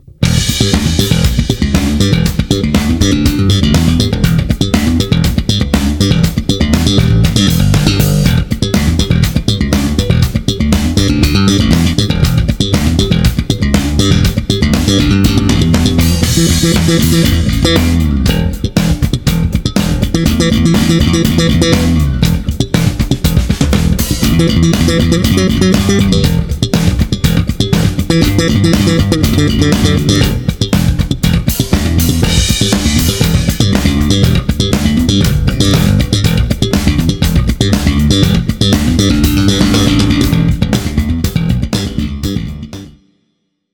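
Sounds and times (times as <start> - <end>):
slap funk electric bass with active three-band electronics: 0.0 - 43.0.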